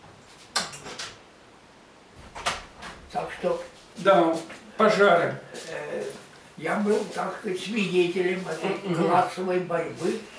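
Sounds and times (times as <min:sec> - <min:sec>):
door being closed: 0:02.2 - 0:03.2
speech: 0:03.1 - 0:05.7, 0:06.6 - 0:10.3.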